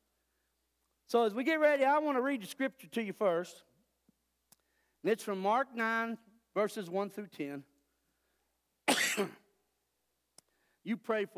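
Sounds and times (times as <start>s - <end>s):
speech: 1.1s - 3.7s, 5.0s - 7.7s, 9.2s - 9.4s, 10.8s - 11.3s
harsh raspy throaty cough: 8.9s - 9.5s.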